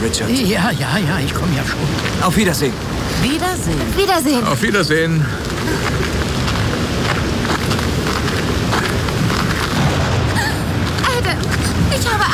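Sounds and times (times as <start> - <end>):
speech: 0.0 - 6.2
heavy rain: 0.0 - 12.3
deep rolling thunder: 2.3 - 12.3.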